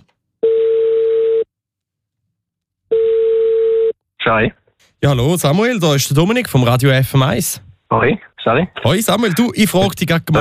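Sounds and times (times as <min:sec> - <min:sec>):
telephone ringback tone while placing a call: 0:00.4 - 0:01.5, 0:02.9 - 0:03.9
speech: 0:04.2 - 0:10.3.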